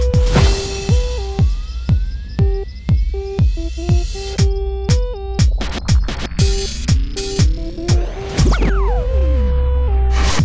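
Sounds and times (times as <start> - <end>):
synth lead: 0.2 - 10.3.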